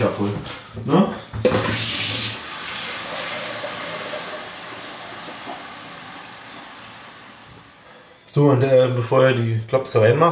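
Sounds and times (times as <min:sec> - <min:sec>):
speech: 0:00.1 - 0:02.0, 0:08.4 - 0:10.3
water pouring into a large wide cooking pot: 0:01.7 - 0:08.0.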